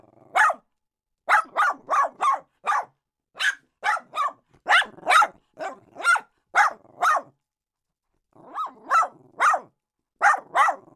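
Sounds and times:
small dog yapping: 0.3s - 0.6s, 1.3s - 7.3s, 8.4s - 10.8s.

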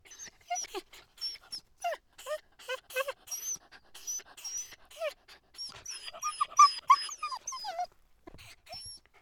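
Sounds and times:
dogs yelping with high rising and falling cries: 3.0s - 7.9s.

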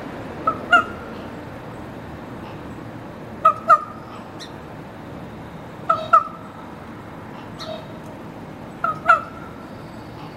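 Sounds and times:
steady background hiss: 0.0s - 10.3s
raven squawks: 0.4s - 1.2s, 3.4s - 4.6s, 5.9s - 6.6s, 7.4s - 8.0s, 8.8s - 9.6s.

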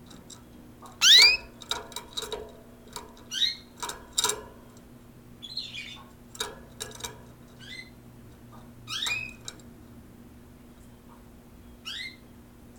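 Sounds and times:
soft background hum: 0.0s - 12.7s
several canaries chirping: 1.0s - 1.5s.

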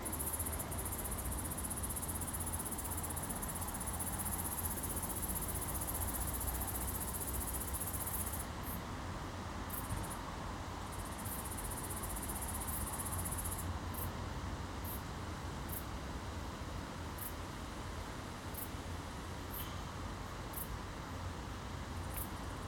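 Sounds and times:
two crickets chirping on a summer evening in the city: 0.0s - 8.8s, 9.7s - 14.2s, 14.8s - 15.1s, 15.7s - 15.9s, 20.5s - 20.8s, 21.9s - 22.6s
constant low rumble of city traffic: 0.0s - 22.6s.

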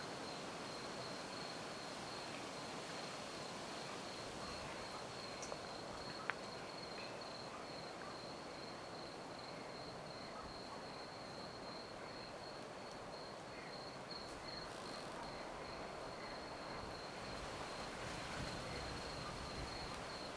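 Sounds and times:
constant hiss: 0.0s - 20.3s
cricket trill in rural countryside at night: 4.1s - 20.3s.

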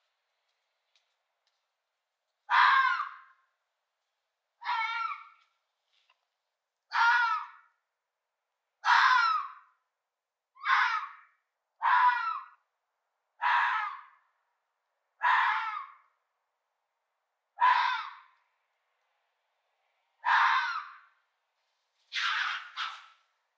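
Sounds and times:
fox hoarse strained mating screams: 2.5s - 3.3s, 4.6s - 5.3s, 6.9s - 7.6s, 8.8s - 9.6s, 10.6s - 11.2s, 11.8s - 12.6s, 13.4s - 14.2s, 15.2s - 16.0s, 17.6s - 18.3s, 20.2s - 21.1s, 22.1s - 23.2s.

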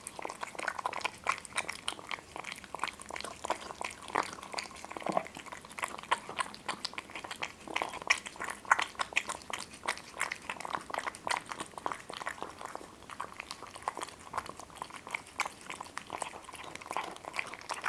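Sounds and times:
two cats chewing crunchy food: 0.0s - 17.8s.

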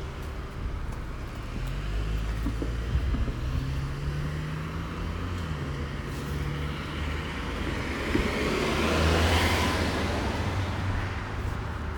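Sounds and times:
low rumble of traffic: 0.0s - 11.9s
single car passing by: 3.3s - 11.9s.

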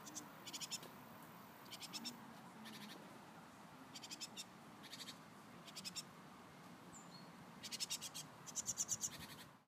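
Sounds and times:
Tit giving harsh, buzzy churring bursts: 0.0s - 0.8s, 1.7s - 3.0s, 3.9s - 6.1s, 7.6s - 9.5s
background hiss: 0.0s - 9.6s.

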